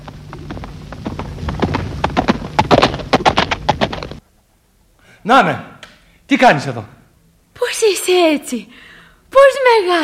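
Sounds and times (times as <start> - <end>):
white horse's hooves clip-clopping: 0.0 - 4.2
speech: 5.2 - 5.7, 6.3 - 7.0, 7.6 - 10.0.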